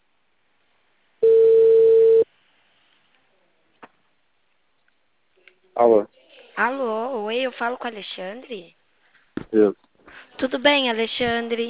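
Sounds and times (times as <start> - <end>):
telephone ringing tone while a call connects: 1.2 - 2.2
speech: 5.8 - 8.8, 9.5 - 11.6.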